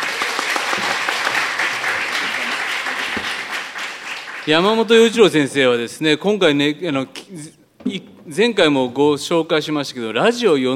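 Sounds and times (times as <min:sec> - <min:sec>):
audience applause welcoming a supporting pianist: 0:00.0 - 0:05.1
speech: 0:04.5 - 0:10.7.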